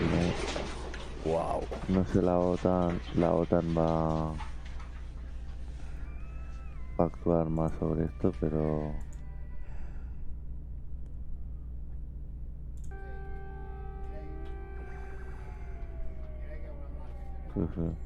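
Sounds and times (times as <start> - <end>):
sirens wailing: 0.0 - 10.6, 12.8 - 18.0
speech: 1.2 - 4.5, 7.0 - 9.1, 17.6 - 18.0.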